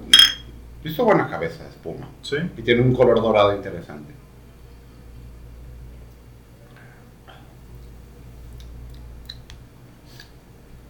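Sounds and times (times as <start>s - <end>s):
beer glasses of light lager clinking in a toast: 0.0s - 0.5s
speech: 0.8s - 4.2s.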